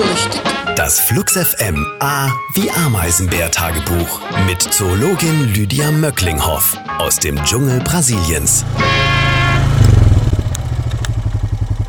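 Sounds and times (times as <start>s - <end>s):
speech: 0.2s - 9.3s
quad bike engine running loudly in the Brazilian jungle: 8.4s - 11.8s.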